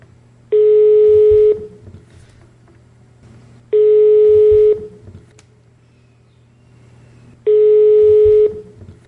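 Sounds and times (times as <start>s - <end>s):
faint low hum: 0.0s - 9.0s
ringback tone of an outgoing telephone call: 0.5s - 1.7s, 3.8s - 4.9s, 7.5s - 8.6s.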